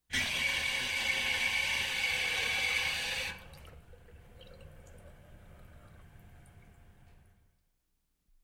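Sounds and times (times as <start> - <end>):
drinking fountain being turned on and off: 0.1 - 7.0.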